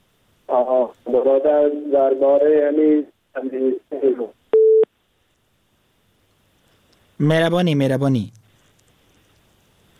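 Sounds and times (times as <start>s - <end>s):
speech: 0.6s - 4.4s, 7.2s - 8.4s
telephone busy-tone beep after a phone-in caller's line drops: 4.6s - 4.9s.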